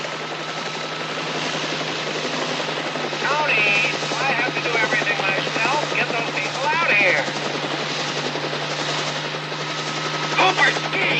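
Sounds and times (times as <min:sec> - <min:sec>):
helicopter rotor chop: 0:00.0 - 0:11.1.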